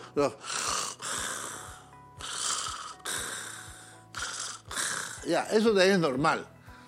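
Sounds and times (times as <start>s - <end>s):
speech: 0.2s - 0.6s, 5.3s - 6.6s
sleeping patient snoring lightly: 0.6s - 5.3s.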